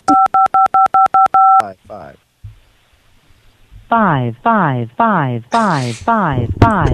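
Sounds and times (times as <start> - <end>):
telephone keypad tones dialing an extension: 0.1 - 1.7
person speaking: 3.9 - 6.9.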